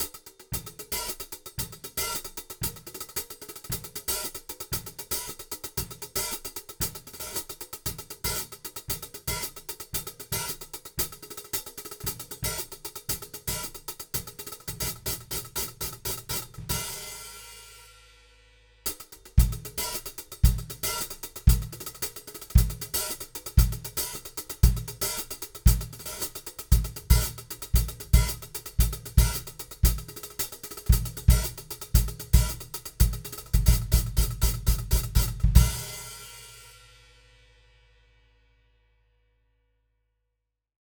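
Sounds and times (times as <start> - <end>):
hi-hat recorded with a microphone: 0.0 - 37.3.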